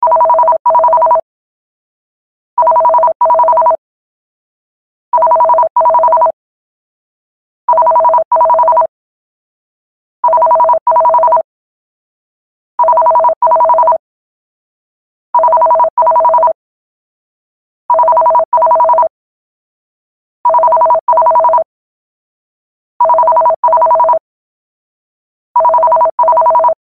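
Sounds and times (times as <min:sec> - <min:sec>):
landline phone ringtone: 0:00.0 - 0:01.2, 0:02.6 - 0:03.8, 0:05.2 - 0:06.4, 0:07.7 - 0:08.9, 0:10.2 - 0:11.4, 0:12.8 - 0:14.0, 0:15.4 - 0:16.6, 0:17.9 - 0:19.1, 0:20.5 - 0:21.7, 0:23.0 - 0:24.2, 0:25.6 - 0:26.8.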